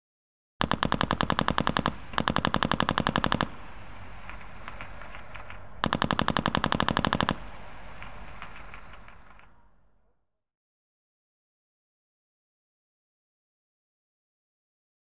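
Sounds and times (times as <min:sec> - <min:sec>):
general purpose machine gun firing in warfare: 0:00.6 - 0:09.9.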